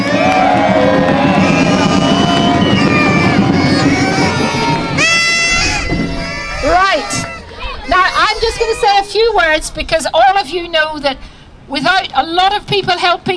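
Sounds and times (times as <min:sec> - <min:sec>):
large crowd at a jungle-themed carnival cheering and whooping: 0:00.0 - 0:09.1
high shrill whistles or shrieks: 0:01.3 - 0:07.4
speech: 0:09.4 - 0:13.3.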